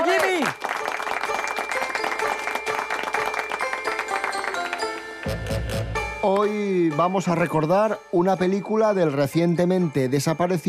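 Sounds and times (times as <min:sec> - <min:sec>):
applause from a small crowd: 0:00.0 - 0:05.4
speech: 0:06.4 - 0:10.6.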